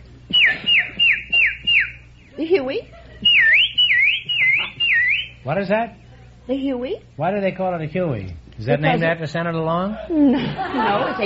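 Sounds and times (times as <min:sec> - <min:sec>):
person whistling imitation of a bird chirp: 0:00.3 - 0:02.3, 0:03.2 - 0:05.4
speech: 0:02.4 - 0:03.0, 0:05.4 - 0:11.2
laughter: 0:02.8 - 0:03.4, 0:10.0 - 0:11.2.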